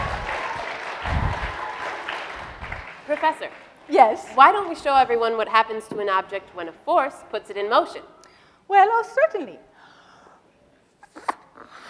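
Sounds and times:
audience applauding in welcome: 0.0 - 5.1
speech: 3.2 - 9.7.

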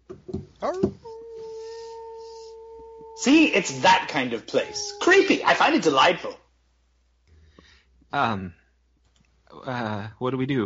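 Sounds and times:
speech: 0.6 - 1.0, 3.2 - 6.4, 8.1 - 8.6, 9.6 - 10.6
wolves howling in a forest: 0.6 - 6.2.

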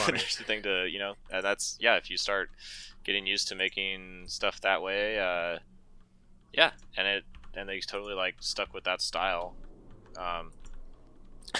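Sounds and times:
speech: 0.0 - 5.8, 6.5 - 9.6, 10.2 - 10.6
computer keyboard typing: 6.7 - 11.5.

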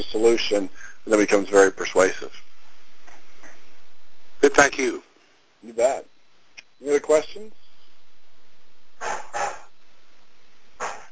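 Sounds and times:
speech: 0.0 - 2.4, 4.4 - 6.1, 6.8 - 7.6
dog barking: 9.0 - 9.7, 10.8 - 11.0.

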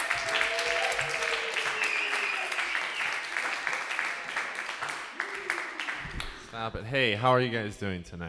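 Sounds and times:
cheers and whoops: 0.0 - 3.5, 5.1 - 6.1
crowd clapping and applauding: 0.0 - 6.5
speech: 6.6 - 8.2.

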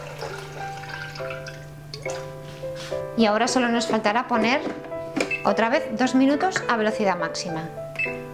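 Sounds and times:
cold water pouring into a mixing jug while making horchata: 0.0 - 2.3
speech: 3.2 - 8.2.

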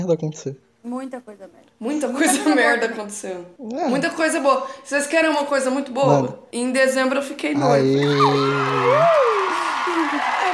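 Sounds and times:
speech: 0.0 - 9.4
celebratory crowd cheering: 7.7 - 10.5
laughter: 7.7 - 10.5
excited cries: 7.8 - 10.5
loud celebratory whoop: 8.0 - 10.5.

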